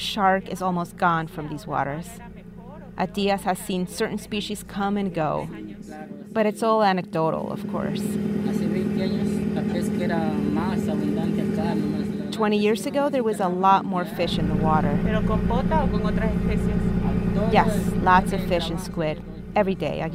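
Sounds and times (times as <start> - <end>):
squid-fishing boat engine drone in the cabin: 0.0 - 20.1
speech: 0.1 - 2.4, 3.0 - 9.3, 10.0 - 20.1.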